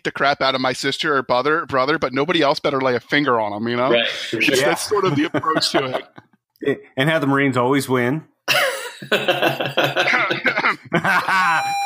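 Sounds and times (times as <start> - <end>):
speech: 0.0 - 11.8
laughter: 4.0 - 6.4, 8.5 - 11.8
person coughing in a rough fit: 8.5 - 10.9.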